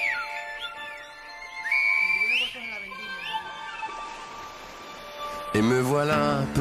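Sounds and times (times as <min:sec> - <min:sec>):
Silbo whistled language whistling: 0:00.0 - 0:04.1
steady musical background: 0:00.0 - 0:06.5
speech: 0:05.6 - 0:06.5.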